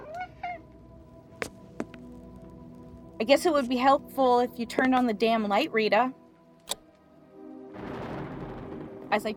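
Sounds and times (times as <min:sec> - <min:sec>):
cat meowing: 0:00.0 - 0:00.6
speech: 0:03.2 - 0:06.2, 0:09.1 - 0:09.3.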